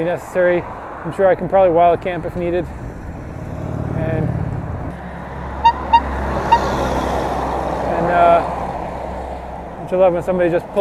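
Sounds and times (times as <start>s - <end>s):
speech: 0.0s - 2.9s, 9.9s - 10.7s
steady rumble of road traffic: 0.0s - 10.7s
small bicycle horn toots: 5.6s - 6.7s.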